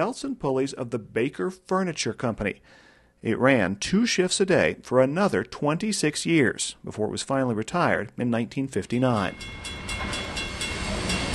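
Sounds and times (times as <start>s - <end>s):
speech: 0.0s - 10.2s
coal train rumbling through Holland, Michigan: 9.1s - 11.3s.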